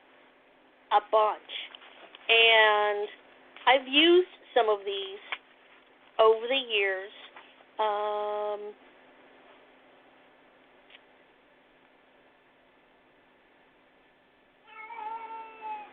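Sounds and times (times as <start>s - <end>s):
speech: 0.9s - 1.6s, 2.3s - 5.4s, 6.2s - 7.2s, 7.8s - 8.9s
cat meowing: 14.7s - 15.9s.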